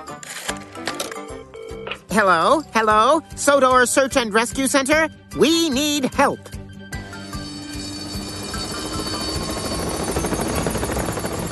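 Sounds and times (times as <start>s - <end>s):
speech: 2.1s - 6.5s
helicopter rotor thumping: 7.2s - 11.4s.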